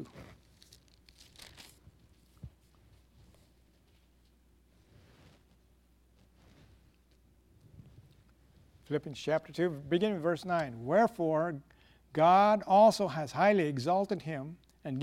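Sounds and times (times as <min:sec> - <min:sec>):
thin pages of an old Bible being turned: 0:00.0 - 0:04.1
speech: 0:08.9 - 0:15.0.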